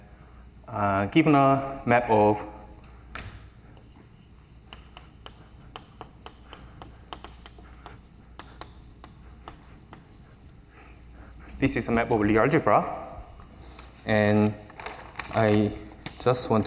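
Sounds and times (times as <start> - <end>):
speech: 0.7 - 2.6, 11.6 - 13.1, 14.1 - 14.6, 15.4 - 16.6
writing on a board during a mathematics lecture: 3.7 - 10.6.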